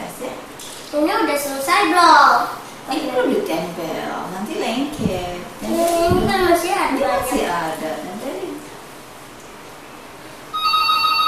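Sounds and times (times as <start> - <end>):
speech: 0.9 - 8.3
telephone ringing with a bright electronic ringtone: 10.5 - 11.2.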